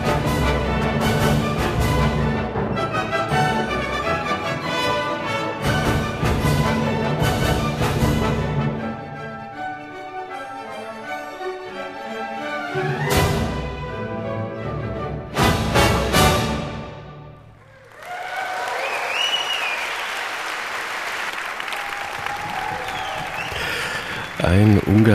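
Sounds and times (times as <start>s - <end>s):
youth orchestra playing a dance piece: 0.0s - 17.6s
large audience applause after orchestra performance: 17.6s - 25.1s
faint whoops from audience: 17.7s - 20.0s, 21.7s - 24.3s
man talking over clapping: 24.2s - 25.1s.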